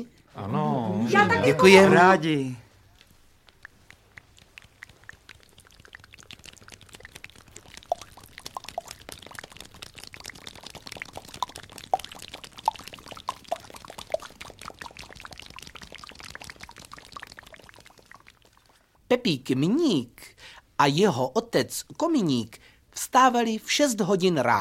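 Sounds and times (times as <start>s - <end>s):
speech: 0.0s - 2.6s, 19.1s - 24.5s
rain imitated with mouth and hands: 2.6s - 19.0s.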